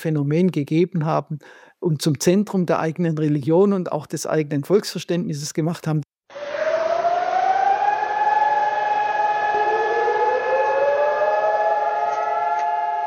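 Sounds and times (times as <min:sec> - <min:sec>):
speech: 0:00.0 - 0:06.6
nationwide memorial sirens in Israel wailing: 0:06.3 - 0:13.0.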